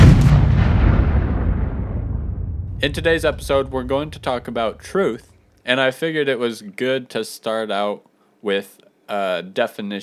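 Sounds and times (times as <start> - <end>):
bomb explosion sound effect with deep rumble: 0.0 - 5.2
speech: 2.8 - 10.0.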